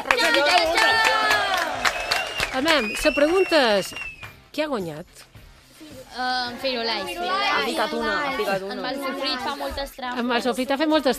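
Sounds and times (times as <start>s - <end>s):
loud crowd clapping: 0.0s - 4.4s
speech: 2.6s - 5.3s, 6.1s - 11.1s.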